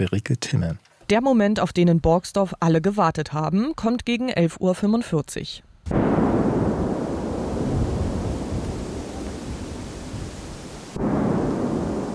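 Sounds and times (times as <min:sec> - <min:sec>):
speech: 0:00.0 - 0:06.2
sharp blast: 0:05.9 - 0:10.3, 0:10.9 - 0:12.1
controlled detonation of munition in a wooded area: 0:05.9 - 0:12.1.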